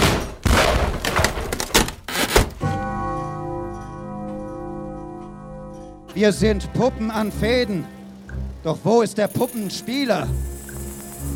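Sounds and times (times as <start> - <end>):
wood and metal door being forced open: 0.0 - 2.7
speech: 6.2 - 8.0, 8.6 - 10.5.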